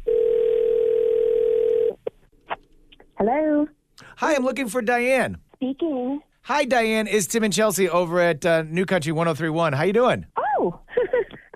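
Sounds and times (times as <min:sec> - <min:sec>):
telephone tone of an outgoing call: 0:00.0 - 0:02.0
speech: 0:03.2 - 0:10.8.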